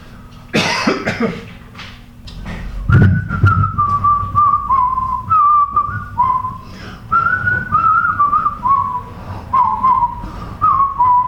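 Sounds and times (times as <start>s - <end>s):
person coughing: 0.5s - 1.5s
person whistling a cheerful bouncy tune: 2.9s - 11.2s.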